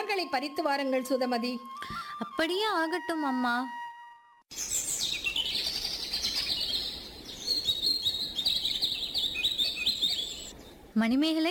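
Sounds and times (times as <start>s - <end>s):
speech: 0.1s - 3.8s, 4.5s - 4.8s, 11.0s - 11.4s
small birds chirping in a garden: 4.5s - 11.2s
faint outdoor hush: 4.5s - 11.4s.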